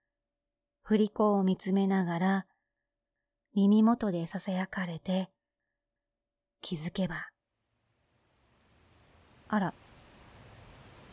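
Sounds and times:
speech: 0.9s - 2.5s, 3.6s - 5.4s, 6.6s - 7.3s, 9.5s - 9.8s
rain pattering: 7.7s - 11.1s.

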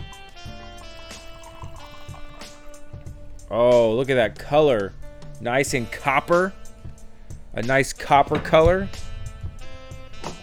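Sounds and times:
drink pouring into a glass with faint bubbling fizz: 0.4s - 3.2s
speech: 3.5s - 6.6s, 7.6s - 9.0s.

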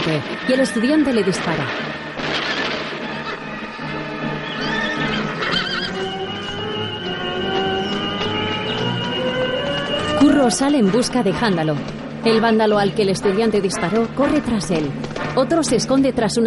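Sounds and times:
speech: 0.0s - 2.0s, 10.4s - 16.4s
horses galloping away as riders flee: 2.6s - 16.4s
high horse whinny: 4.4s - 6.0s.

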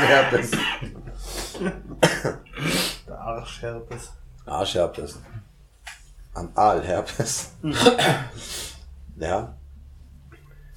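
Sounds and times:
laughter: 0.0s - 0.5s
person coughing harshly: 0.0s - 1.0s, 1.6s - 2.8s, 7.6s - 8.4s
speech: 0.0s - 1.0s, 1.6s - 2.4s, 3.3s - 5.4s, 6.4s - 9.6s.

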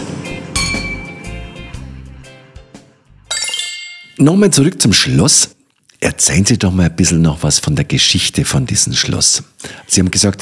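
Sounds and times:
glasses clinking in a toast: 3.3s - 4.2s
speech: 4.2s - 10.4s.

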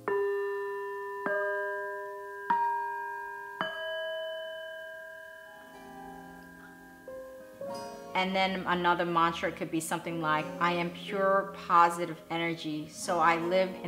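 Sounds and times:
Tibetan bells ringing: 0.0s - 7.4s
speech: 8.2s - 13.8s.

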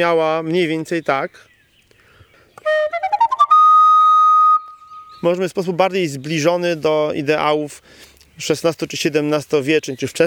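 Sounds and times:
speech: 0.0s - 1.5s, 5.2s - 10.2s
wind instrument playing double-tongued staccato notes and a sustained high note: 2.6s - 5.2s.

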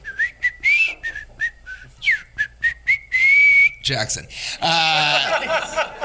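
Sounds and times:
person lip whistling a bouncy melody: 0.0s - 3.8s
speech: 3.9s - 6.0s
laughter: 4.6s - 6.0s.

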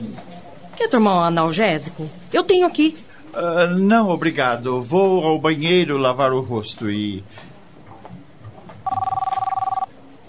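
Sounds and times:
speech: 0.8s - 7.5s
telephone ringing with an electronic warble: 8.8s - 9.9s.

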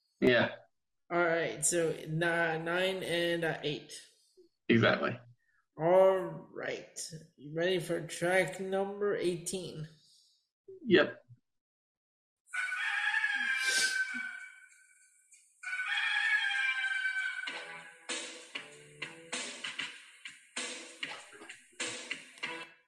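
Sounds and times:
speech: 0.2s - 4.1s, 4.7s - 5.2s, 5.8s - 10.0s, 10.8s - 11.2s
rooster crowing: 12.5s - 14.8s, 15.6s - 17.6s
punchy rhythmic wrestling entrance theme with regular beats: 17.5s - 22.7s.

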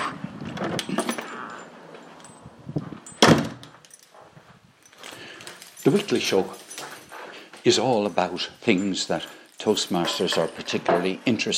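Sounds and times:
keys jangling: 0.5s - 11.5s
shuffling: 1.2s - 11.5s
front door latch clunk: 3.1s - 3.8s
speech: 5.9s - 6.6s, 7.6s - 11.5s.

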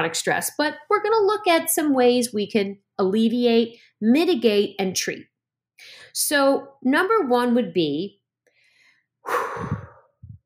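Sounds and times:
speech: 0.0s - 8.2s
deep breath: 8.5s - 10.4s
short low puff of air: 9.3s - 10.1s.

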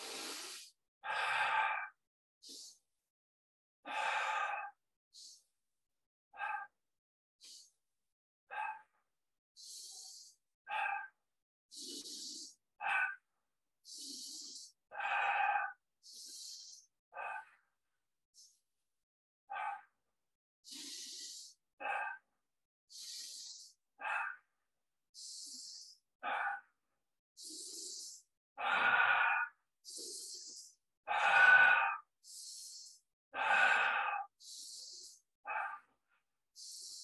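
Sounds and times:
deep breathing in through the nose and out through the mouth: 0.0s - 3.0s, 3.8s - 5.6s, 7.4s - 7.8s, 9.6s - 17.6s, 20.6s - 22.3s, 22.9s - 24.5s, 25.1s - 26.8s, 27.4s - 37.0s.

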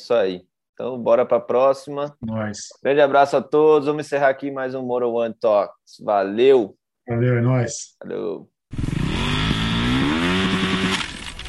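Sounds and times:
speech: 0.0s - 8.9s
motorcycle engine starting and revving: 8.7s - 11.4s.

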